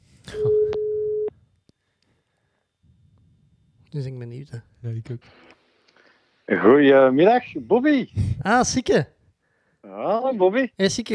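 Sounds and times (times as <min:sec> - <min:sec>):
faint noise: 0:00.0 - 0:11.1
electronic telephone ringing tone while placing a call: 0:00.4 - 0:01.3
speech: 0:03.9 - 0:05.6, 0:06.5 - 0:09.2, 0:09.8 - 0:11.1.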